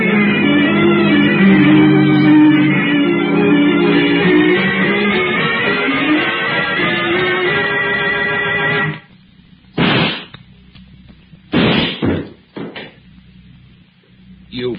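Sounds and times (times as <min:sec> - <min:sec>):
sustained tonal passage: 0:00.0 - 0:08.9
gunshots in a radio drama: 0:09.8 - 0:10.3, 0:11.5 - 0:12.2.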